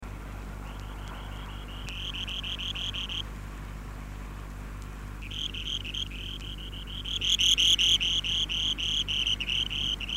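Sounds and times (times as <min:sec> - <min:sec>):
steady low hum: 0:00.0 - 0:10.1
buff-breasted sandpiper Tryngites subruficollis giving short bright ticking notes: 0:00.6 - 0:03.3, 0:04.8 - 0:10.1.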